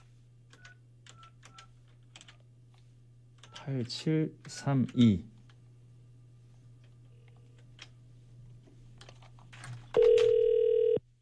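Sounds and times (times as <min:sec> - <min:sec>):
speech: 0:03.6 - 0:05.3
telephone ringback tone over the line: 0:10.0 - 0:11.0.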